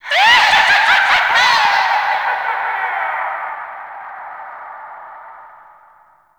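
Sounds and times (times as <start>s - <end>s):
paint pickup laugh sound effect in gameplay: 0.0s - 3.2s.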